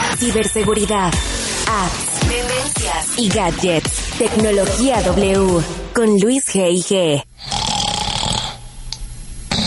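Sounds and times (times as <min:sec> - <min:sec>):
speech: 0:00.2 - 0:07.5
person snoring: 0:07.4 - 0:08.9, 0:09.5 - 0:09.6.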